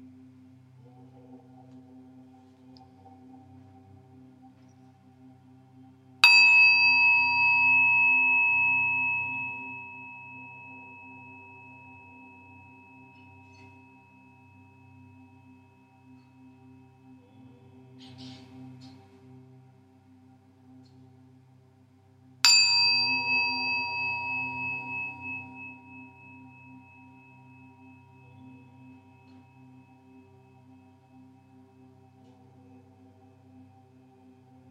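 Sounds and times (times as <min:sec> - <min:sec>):
resonant meditation chimes ringing: 0:06.2 - 0:17.2, 0:22.4 - 0:31.8.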